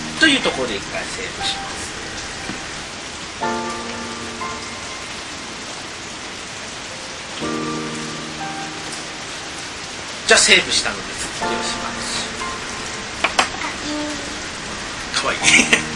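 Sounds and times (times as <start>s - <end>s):
heavy rain pouring down: 0.0s - 15.9s
speech: 0.2s - 2.0s, 3.4s - 3.6s, 10.3s - 12.2s, 15.2s - 15.9s.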